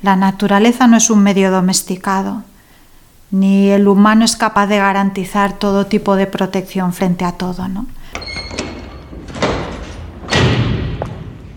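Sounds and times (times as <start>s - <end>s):
speech: 0.0s - 2.5s, 3.3s - 8.6s
fire station door opening and closing: 8.0s - 11.5s.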